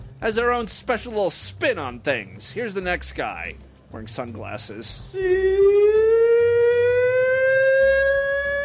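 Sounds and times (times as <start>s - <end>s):
speech: 0.2s - 6.2s
contestant's siren-like pig call at a pig-calling contest: 5.2s - 8.6s.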